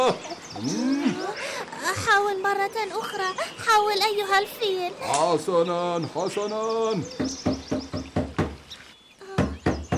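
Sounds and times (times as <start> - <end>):
speech: 0.1 - 7.8
firm knocks on a door: 7.2 - 8.6, 9.4 - 9.9.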